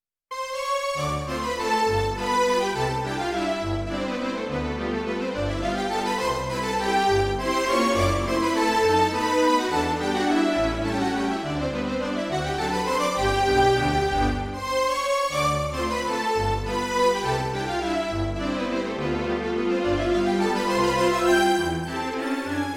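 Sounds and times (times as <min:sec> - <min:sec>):
string orchestra sound on Yamaha P-45 digital piano: 0:00.3 - 0:22.7.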